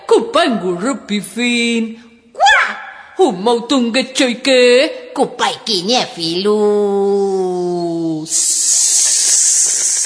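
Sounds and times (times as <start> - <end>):
speech: 0.4 - 2.1, 3.2 - 8.9
sustained loud breathy hiss: 8.3 - 10.0.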